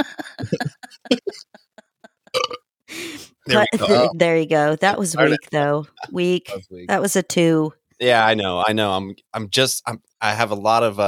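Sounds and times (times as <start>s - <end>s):
laughter: 0.0s - 2.3s, 3.5s - 4.2s, 4.9s - 6.8s
burp: 2.3s - 2.7s
breathy noisy exhale: 2.9s - 3.4s
speech: 3.5s - 11.0s.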